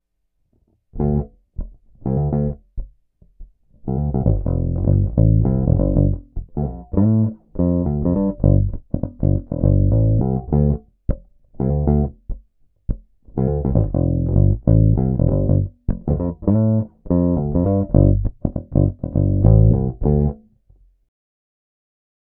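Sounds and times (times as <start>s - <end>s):
electric guitar on humbucker neck pickup with tone down: 1.0s - 2.6s, 3.8s - 10.8s, 11.6s - 12.2s, 13.3s - 20.4s.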